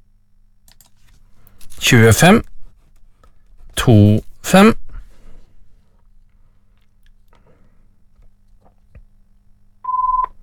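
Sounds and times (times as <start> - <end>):
speech: 1.8 - 2.5, 3.9 - 4.8
electronic telephone ring: 9.9 - 10.3.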